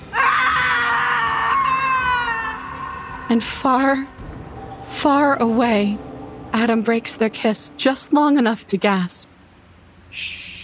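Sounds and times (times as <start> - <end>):
woman shrieking in despair: 0.1 - 3.1
speech: 3.3 - 4.2, 4.9 - 9.3, 10.1 - 10.5.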